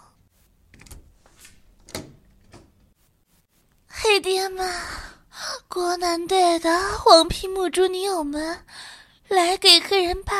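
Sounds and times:
clunks and rattles of door handling: 0.7 - 2.8
speech: 4.2 - 5.0, 5.8 - 10.3.

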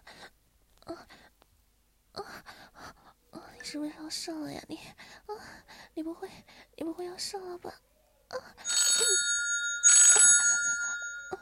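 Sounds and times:
speech: 3.7 - 5.1, 6.0 - 8.6
phone ringing with a harsh bell-like ringtone: 8.6 - 11.4.

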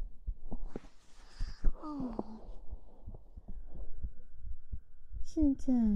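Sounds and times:
fast heartbeat: 0.0 - 5.9
speech: 1.8 - 2.3, 5.4 - 5.9.

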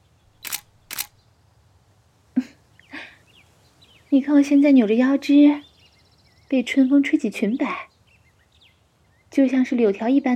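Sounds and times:
camera shutter clicks as photos are taken: 0.4 - 1.2
speech: 4.1 - 5.7, 6.5 - 7.9, 9.3 - 10.3.

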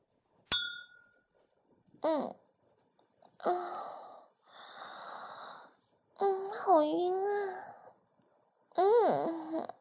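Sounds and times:
glasses clinking: 0.5 - 1.2
speech: 2.0 - 2.4, 3.4 - 4.0, 6.2 - 7.7, 8.8 - 9.8
satisfied exhale and heavy breathy sighs: 3.4 - 5.7.

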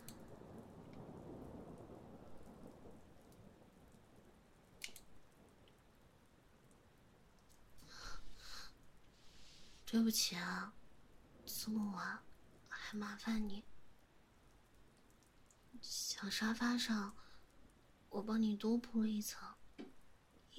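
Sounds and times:
low rumbling thunder: 0.0 - 8.6
rain pouring: 0.0 - 20.5
speech: 9.9 - 10.8, 11.6 - 12.3, 12.9 - 13.7, 15.8 - 17.3, 18.1 - 19.9.

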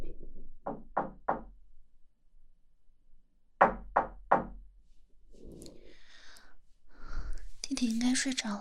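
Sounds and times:
knocking on a door: 0.6 - 1.5, 3.6 - 4.6
speech: 8.2 - 8.5.

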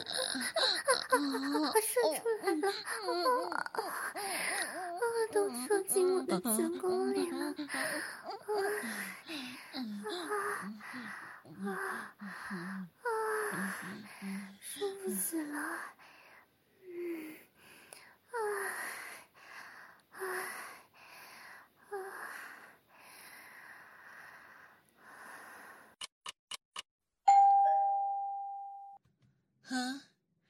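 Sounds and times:
heavy breathy vocal sounds: 0.0 - 26.0
speech: 1.2 - 10.2
single electronic doorbell chime: 27.3 - 29.0.

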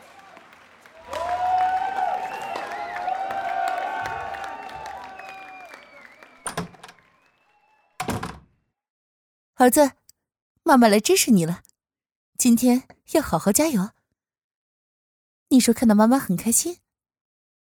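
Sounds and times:
large crowd of spectators cheering at a competition: 0.0 - 8.2
speech: 9.6 - 10.0, 10.7 - 11.6, 12.4 - 14.0, 15.5 - 16.8.

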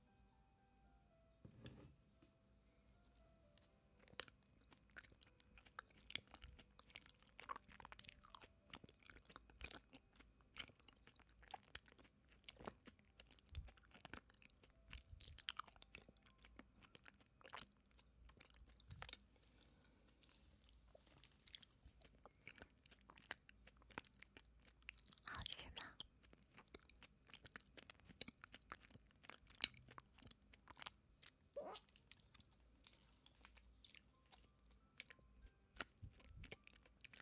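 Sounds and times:
wet chewing of a large sticky glutinous rice ball: 4.0 - 37.2
smacking mouth sounds: 25.1 - 26.0.

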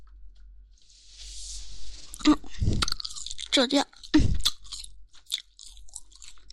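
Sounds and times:
crispy skin being bitten and chewed: 2.1 - 6.5
speech: 3.6 - 4.3.

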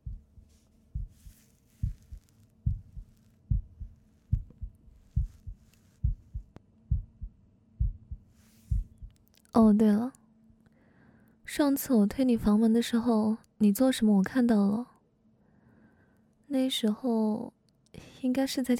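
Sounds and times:
fast heartbeat: 0.0 - 9.2
speech: 9.6 - 10.2, 11.6 - 14.9, 16.5 - 18.7.

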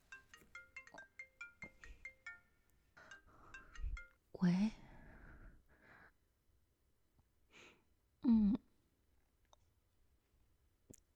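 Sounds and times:
mobile phone bright electronic ringtone melody: 0.0 - 4.2
speech: 4.4 - 4.8.

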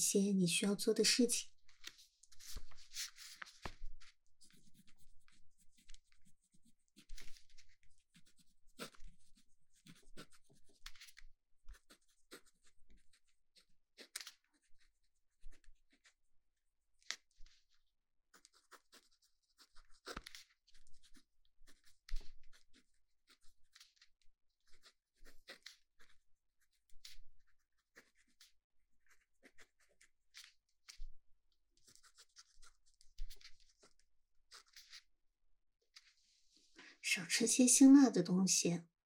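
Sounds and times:
speech: 0.0 - 1.5, 37.5 - 38.9
pen writing on paper: 4.4 - 16.3, 17.1 - 31.0, 31.8 - 35.0.

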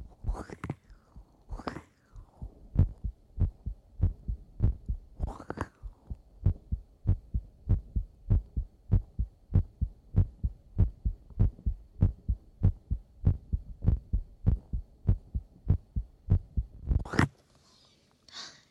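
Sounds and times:
heartbeat through an inexpensive new microphone pressed against a chest: 2.4 - 17.1.

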